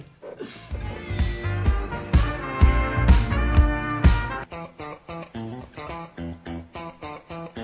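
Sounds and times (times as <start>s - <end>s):
music playing: 0.7s - 4.7s.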